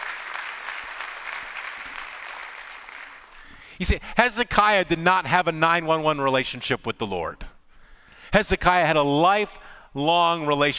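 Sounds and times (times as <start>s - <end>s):
audience applauding: 0.0s - 3.5s
speech: 3.8s - 7.5s, 8.3s - 10.7s.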